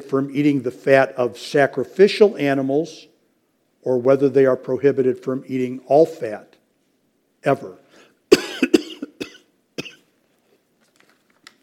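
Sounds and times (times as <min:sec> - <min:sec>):
speech: 0:00.1 - 0:03.1, 0:03.8 - 0:06.5, 0:07.4 - 0:07.8
faint breath or throat sound: 0:07.8 - 0:08.2
person coughing harshly: 0:08.3 - 0:10.1.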